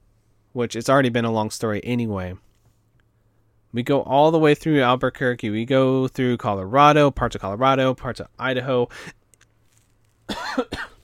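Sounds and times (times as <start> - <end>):
speech: 0.5 - 2.5, 3.7 - 9.2, 10.3 - 10.9
person coughing harshly: 10.3 - 11.0.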